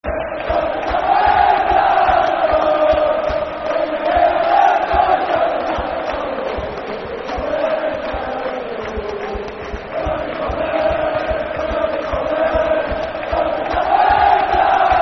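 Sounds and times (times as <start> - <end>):
football supporters chanting a football song: 0.0 - 15.0.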